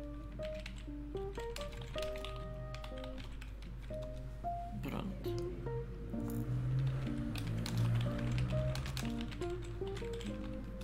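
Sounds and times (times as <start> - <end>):
rapid typewriter-style typing: 0.2 - 4.2, 6.9 - 10.7
speech: 4.9 - 6.7.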